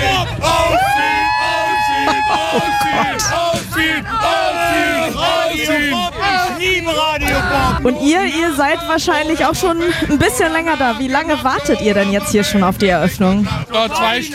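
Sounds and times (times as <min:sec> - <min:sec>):
crowd cheering and yelling while waiting in the sun for the infield opening: 0:00.0 - 0:12.1
laughter: 0:00.0 - 0:14.3
speech: 0:07.8 - 0:14.3.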